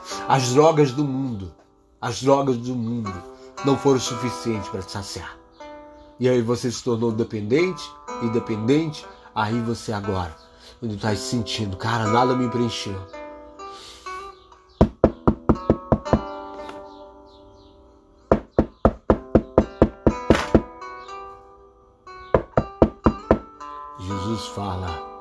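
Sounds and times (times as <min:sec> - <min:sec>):
speech: 0:00.3 - 0:05.4, 0:06.2 - 0:13.2
firm knocking on a door: 0:14.8 - 0:16.3, 0:18.3 - 0:20.7, 0:22.4 - 0:23.5.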